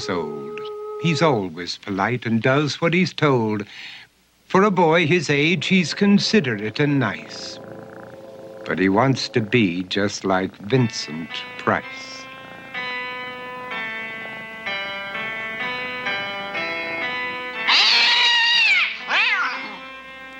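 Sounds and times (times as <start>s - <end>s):
speech: 0.0s - 0.4s, 1.0s - 7.6s, 8.7s - 12.1s
sustained tonal notes: 0.0s - 1.6s, 5.0s - 17.8s
cat meowing: 17.6s - 19.9s.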